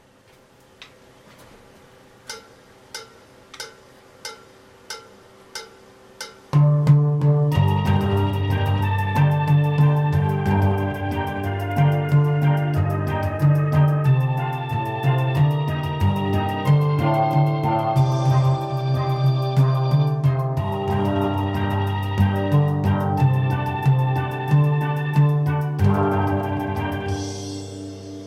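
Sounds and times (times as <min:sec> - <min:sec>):
solo bass: 0:06.6 - 0:28.2.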